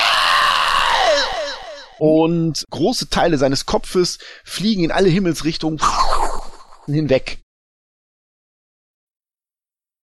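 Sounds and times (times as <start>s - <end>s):
person performing a loud strained scream: 0.0s - 2.1s
speech: 2.0s - 6.2s, 6.9s - 7.4s.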